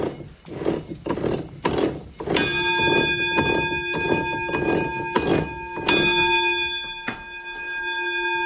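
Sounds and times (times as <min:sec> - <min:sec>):
wooden water mill wheel and gears clattering: 0:00.0 - 0:07.1
bright bell striking: 0:02.4 - 0:08.4.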